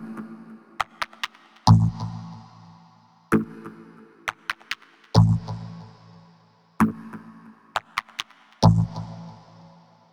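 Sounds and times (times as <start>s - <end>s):
dubstep percussion loop: 0.8s - 1.9s, 4.3s - 5.4s, 7.7s - 8.9s.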